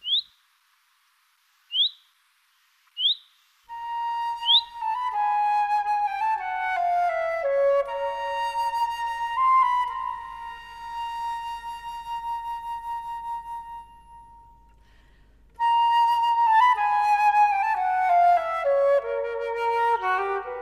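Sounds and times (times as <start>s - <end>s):
male Common Chaffinch calls from Osnabrück, Lower Saxony: 0.0s - 0.4s, 1.7s - 2.1s, 3.0s - 3.4s, 4.4s - 4.8s
instrumental music: 3.7s - 20.6s.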